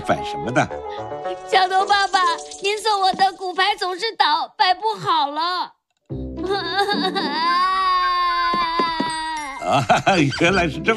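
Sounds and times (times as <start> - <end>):
speech: 0.0 - 8.0, 9.7 - 10.9
young cartoon boy crying over toppled dominoes: 6.4 - 9.8.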